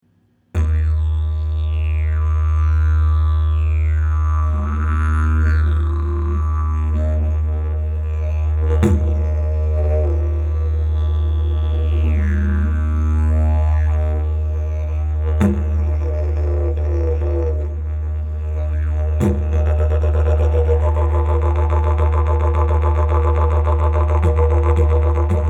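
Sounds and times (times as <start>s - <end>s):
didgeridoo: 0.6s - 25.4s.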